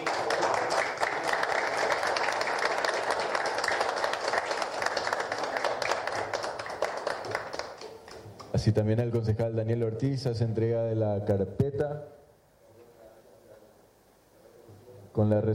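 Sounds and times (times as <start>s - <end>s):
sizeable crowd applauding at a municipal award ceremony: 0.0s - 8.4s
speech: 8.6s - 12.2s, 15.2s - 15.5s.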